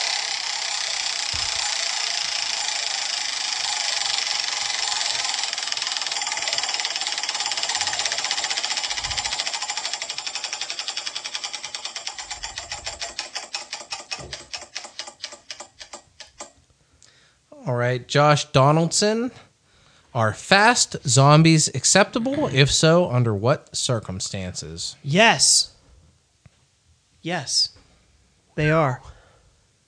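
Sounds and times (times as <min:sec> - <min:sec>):
spun wheel clicking: 0:00.0 - 0:16.6
speech: 0:17.9 - 0:19.5, 0:20.2 - 0:25.7, 0:27.2 - 0:27.8, 0:28.6 - 0:29.1.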